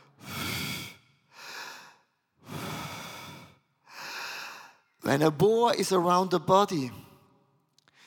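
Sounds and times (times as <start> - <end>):
person breathing in and out: 0.0 - 5.0
speech: 5.1 - 7.0.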